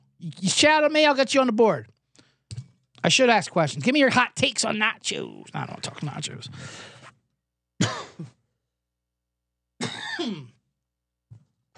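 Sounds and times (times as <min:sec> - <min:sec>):
speech: 0:00.2 - 0:01.9, 0:03.0 - 0:07.0
person clearing throat with raspy coughs: 0:07.8 - 0:08.4, 0:09.8 - 0:10.6.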